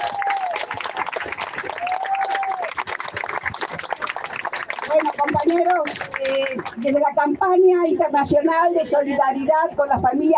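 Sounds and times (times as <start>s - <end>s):
crowd applause at a solidarity gathering: 0.0s - 6.8s
speech: 4.9s - 10.3s.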